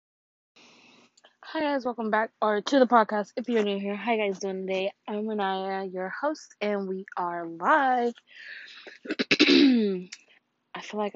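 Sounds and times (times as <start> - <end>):
speech: 1.5 - 10.2, 10.8 - 11.1
person clearing throat: 8.9 - 10.1.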